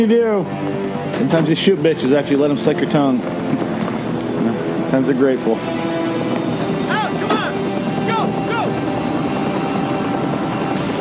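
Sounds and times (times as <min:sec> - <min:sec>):
speech: 0:00.0 - 0:03.4, 0:04.4 - 0:05.7
helicopter rotor blades chopping: 0:00.0 - 0:10.9.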